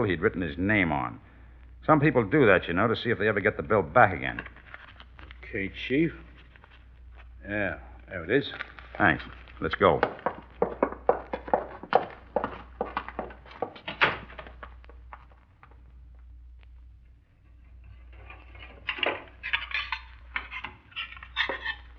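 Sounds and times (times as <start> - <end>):
speech: 0.0 - 4.6, 5.5 - 6.3, 7.4 - 10.2
low steady hum: 0.0 - 21.9
dishes and cutlery clattering while washing up: 17.8 - 21.9.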